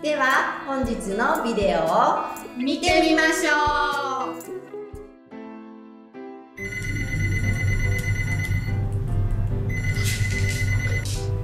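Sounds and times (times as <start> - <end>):
speech: 0.0 - 4.6
telephone ringing with electronic tones in a Japanese business setting: 6.6 - 8.9, 9.7 - 11.4.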